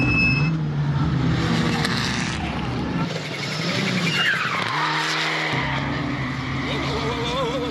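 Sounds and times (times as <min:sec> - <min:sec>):
all-wheel-drive car engine revving: 0:00.0 - 0:07.6
all-wheel-drive car tires squealing through a corner: 0:01.5 - 0:07.6.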